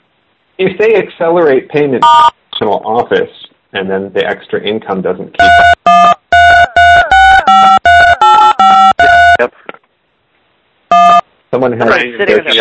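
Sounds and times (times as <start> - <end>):
speech: 0.6 - 6.0, 11.5 - 12.5
phone keypad tones from accidental pocket dial: 5.4 - 9.4, 10.9 - 11.2.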